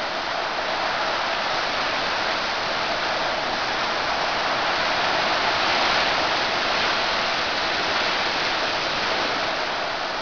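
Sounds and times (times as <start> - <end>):
weak wind: 0.0 - 10.2.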